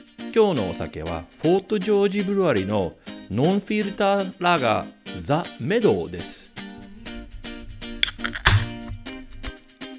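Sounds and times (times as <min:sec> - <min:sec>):
speech: 0:00.4 - 0:06.5
sharp clinks of a lager being opened: 0:06.8 - 0:09.5
unfiltered lager fizzing as it is poured: 0:06.8 - 0:09.5.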